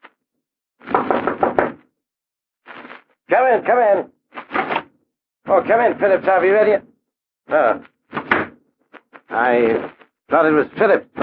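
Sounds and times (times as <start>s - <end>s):
firm knocking on a door: 0.9s - 1.8s
speech: 3.3s - 4.2s, 5.5s - 6.9s, 7.5s - 7.9s, 9.3s - 11.2s.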